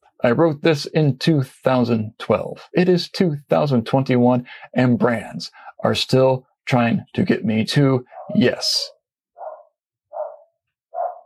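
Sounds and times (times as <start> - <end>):
speech: 0.2 - 9.0
dog barking: 8.1 - 8.5, 9.4 - 11.2.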